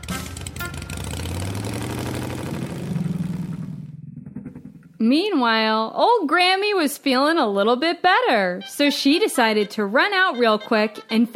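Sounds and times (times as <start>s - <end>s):
small scooter engine revving and pulling away: 0.0s - 4.7s
speech: 5.0s - 11.3s.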